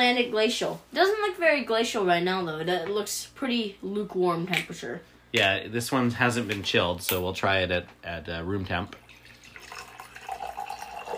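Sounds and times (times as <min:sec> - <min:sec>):
speech: 0:00.0 - 0:09.1
still natural spring water pouring from a plastic bottle into a glass: 0:08.9 - 0:11.1.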